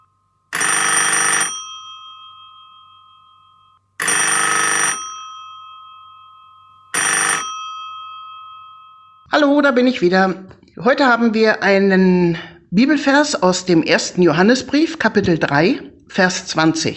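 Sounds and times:
telephone ringing with bell-like rings: 0.0s - 9.3s
speech: 9.3s - 16.9s.

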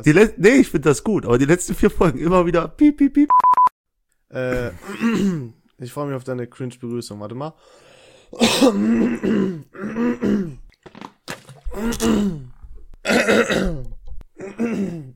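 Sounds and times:
speech: 0.0s - 3.6s, 4.3s - 11.1s, 11.8s - 15.1s
person clearing throat: 4.4s - 5.6s, 8.4s - 10.7s, 11.6s - 15.1s.

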